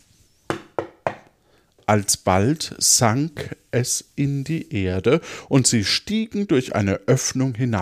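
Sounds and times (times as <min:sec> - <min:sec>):
knocks on a wooden bed frame: 0:00.5 - 0:01.2
speech: 0:01.9 - 0:07.7.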